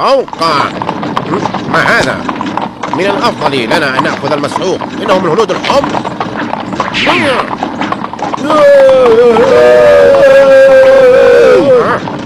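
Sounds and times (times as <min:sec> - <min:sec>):
speech: 0:00.0 - 0:06.2, 0:06.8 - 0:07.6, 0:08.4 - 0:11.0
horse hooves clip-clopping: 0:00.0 - 0:12.2
man shouting: 0:08.4 - 0:12.0.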